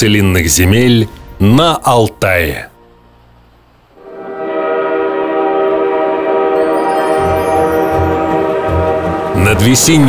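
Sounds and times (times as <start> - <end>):
speech: 0.0 - 2.7, 9.4 - 10.0
low rumble of the steam train: 4.0 - 10.0
steam locomotive horn blast approaching a station: 4.0 - 10.0.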